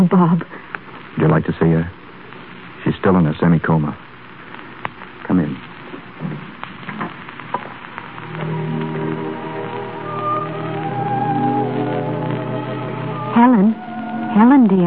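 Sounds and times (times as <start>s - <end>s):
speech: 0.0s - 0.6s, 1.2s - 2.0s, 2.9s - 4.0s, 5.3s - 5.6s, 14.6s - 14.8s
heavy rain falling: 6.2s - 14.8s
low sustained droning tone: 8.2s - 14.8s.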